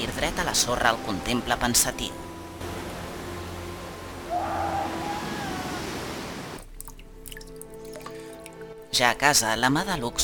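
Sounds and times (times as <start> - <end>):
sea waves breaking on a beach: 0.0 - 6.6
speech: 0.2 - 2.3, 9.0 - 10.2.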